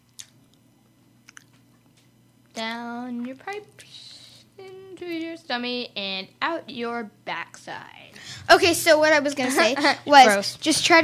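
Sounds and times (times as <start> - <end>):
low steady hum: 0.0 - 11.0
crunchy food being chewed: 1.2 - 1.9
speech: 2.6 - 11.0.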